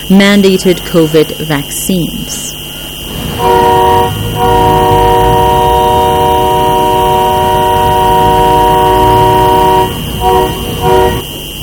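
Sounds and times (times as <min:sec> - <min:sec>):
speech: 0:00.1 - 0:02.6
tractor and pickup truck engine rumble: 0:02.7 - 0:11.6
air horn blasts from a convoy of tractors and pickup trucks: 0:03.0 - 0:11.5.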